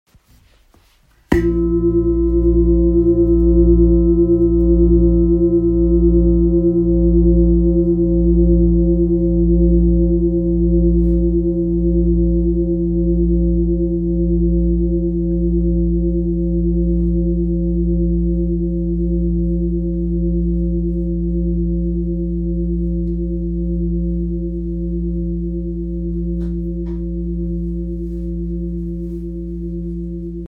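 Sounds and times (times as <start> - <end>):
large 9.47 kg Bengal bowl tuned to E: 1.3 - 30.4.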